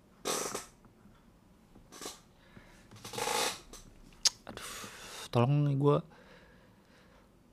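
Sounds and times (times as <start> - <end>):
chair creaking: 1.9 - 2.2, 2.9 - 3.9
speech: 5.3 - 6.2.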